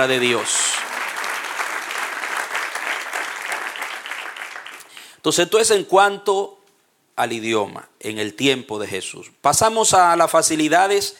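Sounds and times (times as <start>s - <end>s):
speech: 0.0s - 0.6s, 5.2s - 6.6s, 7.2s - 11.1s
audience applauding: 0.0s - 5.2s.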